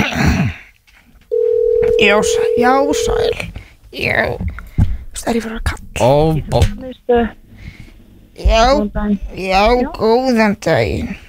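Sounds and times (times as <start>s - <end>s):
steady telephone tone while calling a sports centre: 1.3s - 3.4s
speech: 2.0s - 4.5s, 5.2s - 7.4s, 8.4s - 11.2s.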